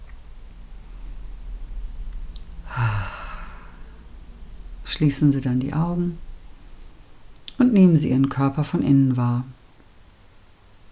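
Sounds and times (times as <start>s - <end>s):
deep breath in through nose and out through mouth: 2.6s - 4.2s
speech: 4.9s - 6.2s, 7.7s - 9.6s.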